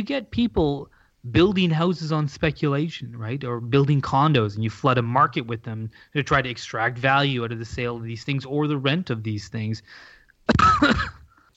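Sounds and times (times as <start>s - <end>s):
speech: 0.0s - 11.1s
man coughing: 10.5s - 11.4s.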